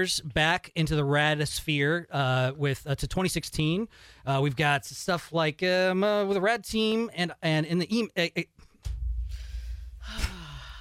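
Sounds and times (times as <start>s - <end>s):
speech: 0.0s - 8.6s
deep yoga breathing exercise: 9.1s - 10.7s.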